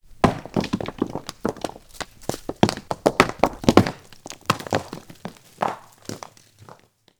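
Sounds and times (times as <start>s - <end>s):
rocks falling: 0.0s - 7.0s.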